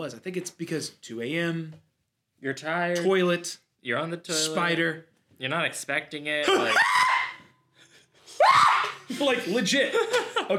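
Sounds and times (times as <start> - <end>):
speech: 0.0 - 7.1, 9.2 - 10.5
man yelping shrilly: 6.4 - 7.3
man reenacting a loud startled scream: 6.4 - 7.4.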